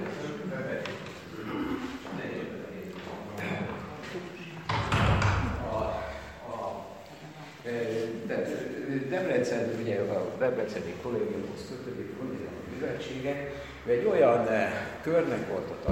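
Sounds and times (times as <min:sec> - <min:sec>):
room noise: 0:00.0 - 0:15.8
door pushed shut: 0:04.7 - 0:05.6
speech: 0:08.3 - 0:15.8.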